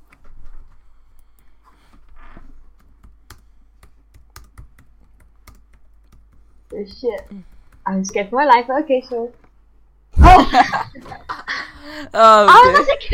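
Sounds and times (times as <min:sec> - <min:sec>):
typing on a computer keyboard: 0:02.7 - 0:08.3
speech: 0:06.8 - 0:09.4, 0:10.5 - 0:13.1.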